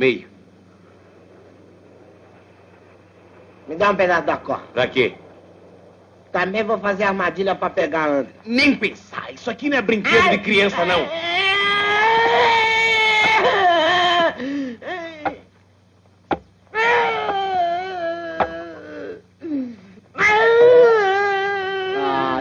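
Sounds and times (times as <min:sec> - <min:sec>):
speech: 0:00.0 - 0:00.3, 0:03.7 - 0:05.2, 0:06.3 - 0:11.5
child crying loudly in wailing strained bursts: 0:10.9 - 0:15.3, 0:16.8 - 0:19.2, 0:20.2 - 0:22.4.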